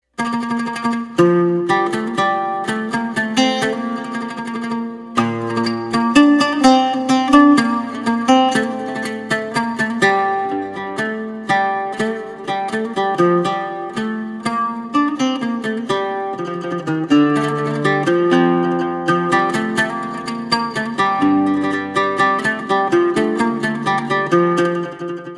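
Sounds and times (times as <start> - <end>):
oud playing: 0.1 - 25.3.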